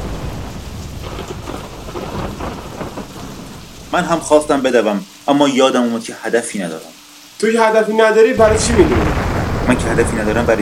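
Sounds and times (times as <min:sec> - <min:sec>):
low rumble of thunder: 0:00.0 - 0:04.9, 0:08.4 - 0:10.6
heavy rain shower pattering on surfaces in a city: 0:00.0 - 0:10.6
speech: 0:03.9 - 0:10.6.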